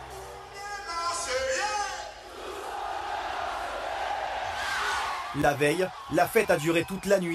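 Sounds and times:
football supporters cheering and shouting in stadium: 0:00.0 - 0:07.3
speech: 0:05.4 - 0:07.3.

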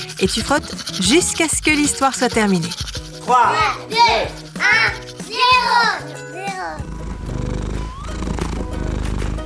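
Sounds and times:
speech: 0:00.0 - 0:06.8
busy tonal sounds: 0:00.0 - 0:09.1
cat purring: 0:06.7 - 0:09.4.

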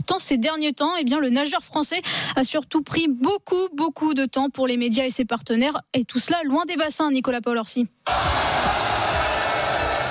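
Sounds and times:
speech: 0:00.1 - 0:08.5
large indoor crowd cheering at wheelchair basketball basket: 0:08.1 - 0:10.0.

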